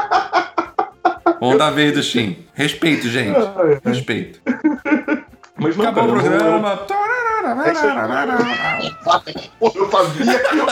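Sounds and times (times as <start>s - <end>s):
laughter: 0.0s - 1.7s, 2.8s - 10.7s
speech: 1.4s - 4.5s, 5.6s - 10.7s
cat meowing: 7.7s - 9.6s.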